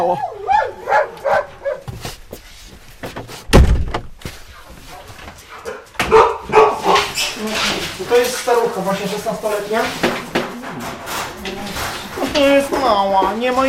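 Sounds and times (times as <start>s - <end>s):
speech: 0.0s - 0.5s, 8.1s - 10.2s, 12.4s - 13.6s
dogs barking: 0.0s - 1.9s, 4.9s - 7.4s
heavy thump: 3.0s - 4.3s.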